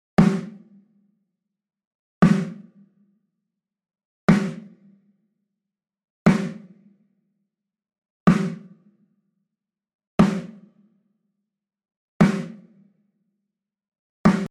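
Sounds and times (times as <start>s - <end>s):
drum kit: 0.2s - 0.5s, 2.2s - 2.6s, 4.3s - 4.6s, 6.3s - 6.6s, 8.3s - 8.6s, 10.2s - 10.6s, 12.2s - 12.5s, 14.3s - 14.4s.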